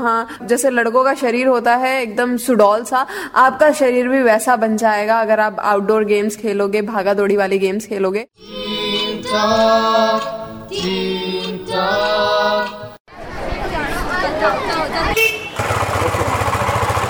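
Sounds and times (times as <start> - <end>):
speech: 0.0 - 8.7, 9.3 - 12.8
people chattering: 13.1 - 15.2
old rattletrap motorbike rattling and puttering: 15.6 - 17.0.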